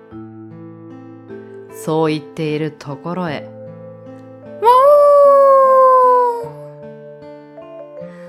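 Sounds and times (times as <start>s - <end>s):
soft steady music: 0.0s - 8.2s
speech: 1.8s - 3.6s
wolf howling in the distance: 4.6s - 6.7s.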